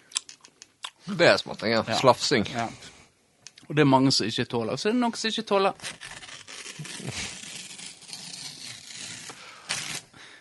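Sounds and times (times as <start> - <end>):
speech: 1.1 - 3.0, 3.7 - 6.2
paper being torn: 5.7 - 10.1.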